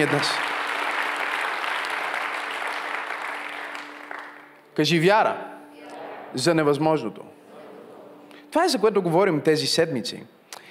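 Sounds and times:
speech: 0:00.0 - 0:00.5, 0:04.8 - 0:05.5, 0:06.3 - 0:07.4, 0:08.5 - 0:10.4
church audience applauding: 0:00.0 - 0:04.6.

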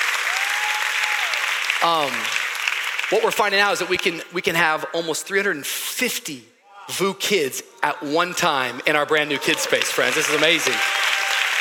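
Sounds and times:
crowd audience applause: 0:00.0 - 0:03.4, 0:08.7 - 0:11.6
speech: 0:01.8 - 0:02.4, 0:03.1 - 0:11.0.

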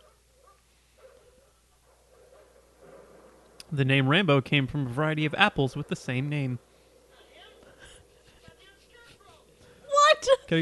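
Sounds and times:
dog yapping: 0:00.0 - 0:02.7
low hum: 0:00.0 - 0:10.6
speech: 0:03.7 - 0:06.7.

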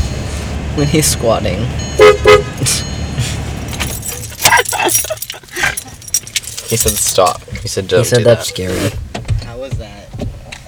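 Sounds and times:
low engine hum: 0:00.0 - 0:10.6
speech: 0:00.8 - 0:03.4, 0:04.8 - 0:05.2, 0:06.7 - 0:09.0
car horn honking: 0:01.8 - 0:03.5.

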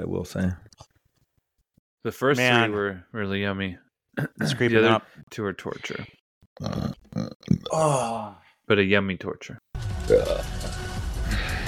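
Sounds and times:
speech: 0:00.0 - 0:00.8, 0:02.0 - 0:10.6
person burping: 0:04.1 - 0:04.7, 0:05.8 - 0:08.4, 0:10.0 - 0:10.7.

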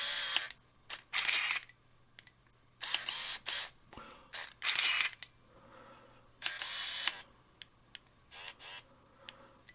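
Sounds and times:
motor-driven film advance of a Minolta 7000 AF autofocus film camera: 0:00.0 - 0:01.7, 0:02.8 - 0:03.7, 0:04.4 - 0:05.2, 0:06.4 - 0:07.2
shutter firings of a Minolta 7000 AF autofocus film camera: 0:00.0 - 0:01.7, 0:02.8 - 0:03.7, 0:04.4 - 0:05.2, 0:06.4 - 0:07.3.

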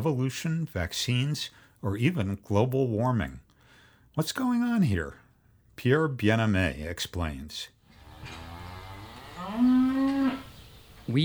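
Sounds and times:
speech: 0:00.0 - 0:03.4, 0:04.2 - 0:05.2, 0:05.8 - 0:08.4, 0:09.4 - 0:09.8
dairy cow mooing: 0:07.9 - 0:11.2.

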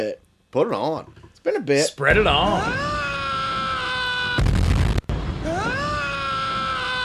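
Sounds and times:
speech: 0:00.0 - 0:03.0
rumbling burst: 0:02.1 - 0:07.0
loud sustained scream sound effect: 0:02.6 - 0:04.5, 0:05.4 - 0:07.0.

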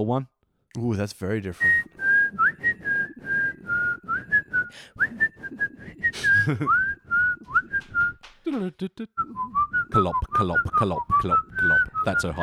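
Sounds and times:
speech: 0:00.0 - 0:01.9, 0:06.4 - 0:06.8, 0:08.5 - 0:12.4
person whistling a bouncy melody: 0:01.6 - 0:08.2, 0:09.2 - 0:12.4.

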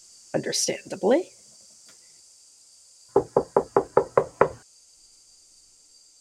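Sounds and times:
faint steady hiss: 0:00.0 - 0:06.1
speech: 0:00.3 - 0:01.4
quick firm knocks on a wooden door: 0:03.1 - 0:04.6.

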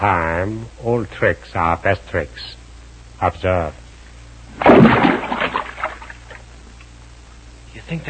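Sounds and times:
speech: 0:00.0 - 0:02.6, 0:03.2 - 0:03.8, 0:07.8 - 0:08.0
rock splashing into a water hole: 0:04.6 - 0:06.4.

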